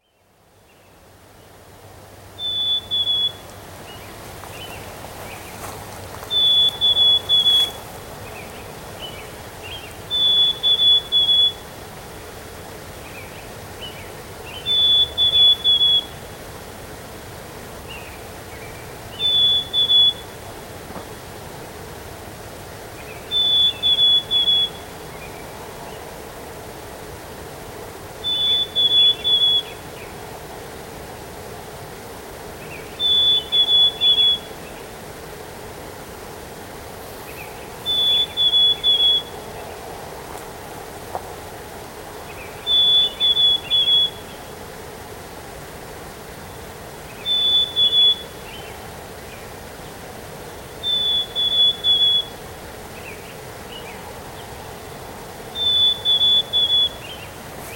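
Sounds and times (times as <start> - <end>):
bird song: 0.0 - 1.0, 2.4 - 11.7, 13.0 - 16.3, 17.9 - 20.4, 23.0 - 26.1, 28.2 - 30.2, 32.6 - 34.9, 37.3 - 39.9, 42.2 - 44.6, 46.4 - 49.5, 50.8 - 57.7.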